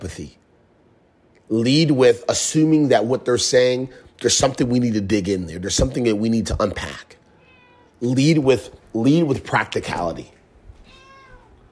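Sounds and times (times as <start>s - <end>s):
speech: 0.0s - 0.4s, 1.5s - 7.2s, 8.0s - 10.4s
cat meowing: 7.3s - 8.0s, 10.8s - 11.7s.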